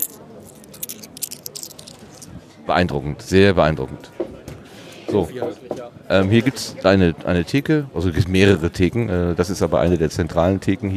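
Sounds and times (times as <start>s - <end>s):
rustling money while paying for a drink: 0.0s - 2.3s
faint murmur of room noise: 0.0s - 10.9s
speech: 2.7s - 4.2s, 5.1s - 10.9s.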